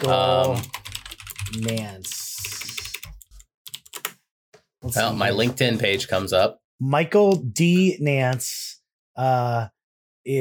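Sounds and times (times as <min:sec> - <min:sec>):
speech: 0:00.0 - 0:00.8, 0:01.5 - 0:02.6, 0:04.8 - 0:08.6, 0:09.2 - 0:10.3
computer keyboard typing for a search: 0:00.0 - 0:04.2.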